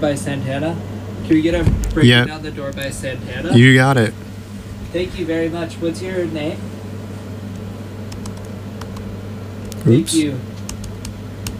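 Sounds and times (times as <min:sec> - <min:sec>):
speech: 0:00.0 - 0:04.3, 0:04.9 - 0:06.7, 0:09.8 - 0:10.5
constant low hum: 0:00.8 - 0:08.9
computer keyboard typing: 0:08.1 - 0:09.1, 0:10.6 - 0:11.5.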